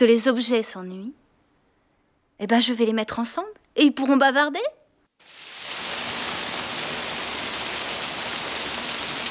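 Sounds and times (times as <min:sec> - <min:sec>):
speech: 0:00.0 - 0:01.2, 0:02.4 - 0:05.4
steady rain pattering on surfaces: 0:05.2 - 0:09.3.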